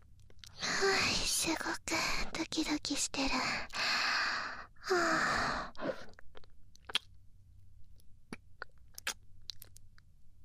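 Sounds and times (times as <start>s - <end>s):
speech: 0.8s - 3.8s, 4.9s - 5.9s
wet mouth smacks and clicks of lips nibbling an earlobe: 6.2s - 7.2s, 8.3s - 10.0s.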